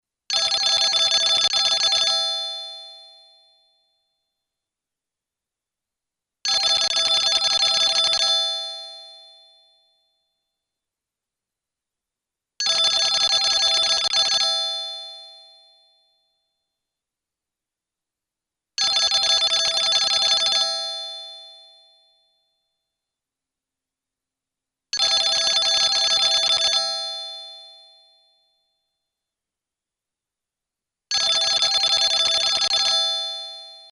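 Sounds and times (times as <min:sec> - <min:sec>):
old Swiss phone ringtones: 0:00.3 - 0:03.9, 0:06.5 - 0:10.0, 0:12.6 - 0:16.3, 0:18.8 - 0:22.4, 0:25.0 - 0:28.5, 0:31.1 - 0:33.9.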